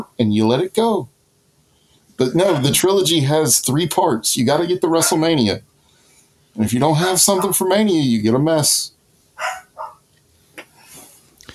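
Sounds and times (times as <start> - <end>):
speech: 0.0 - 1.1, 2.2 - 5.7, 6.6 - 9.6
dog barking: 2.4 - 2.8, 4.5 - 5.3, 7.2 - 7.7, 9.4 - 10.0
scuffling: 9.4 - 10.0.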